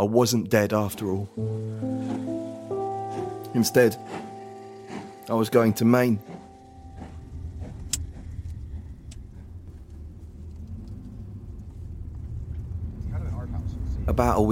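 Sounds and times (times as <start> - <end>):
speech: 0.0 - 2.3, 3.6 - 4.3, 5.3 - 6.4, 14.1 - 14.5
car driving along a winding forest road: 6.5 - 14.5.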